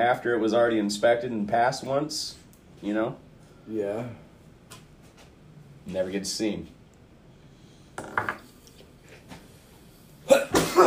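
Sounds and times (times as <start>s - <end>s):
speech: 0.0s - 4.2s, 5.8s - 6.8s
person sneezing: 10.2s - 10.8s.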